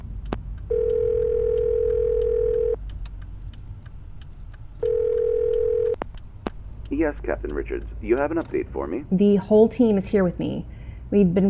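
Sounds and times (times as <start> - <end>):
low engine-like rumble inside a car: 0.0 - 11.4
car phone dial tone: 0.7 - 2.8, 4.8 - 6.0
speech: 7.0 - 11.4.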